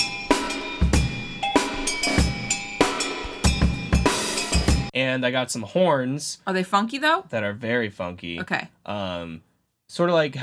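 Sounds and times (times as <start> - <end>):
funky drum beat with kick, snare and cymbals on a music track: 0.0 - 4.9
speech: 5.0 - 10.4.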